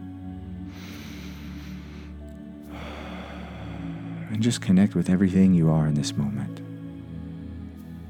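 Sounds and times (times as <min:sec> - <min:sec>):
slow deep breath drawn in: 0:00.7 - 0:04.3
speech: 0:04.3 - 0:06.6.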